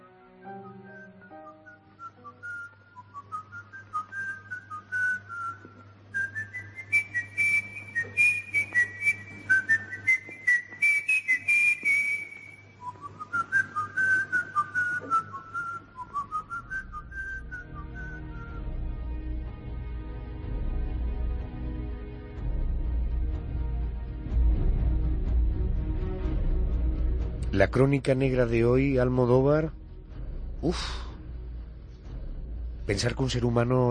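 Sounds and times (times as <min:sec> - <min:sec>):
whistled film character theme melody: 0:00.0 - 0:19.0
low steady hum: 0:02.6 - 0:33.8
speech: 0:27.6 - 0:29.8, 0:30.6 - 0:31.0, 0:32.9 - 0:33.8.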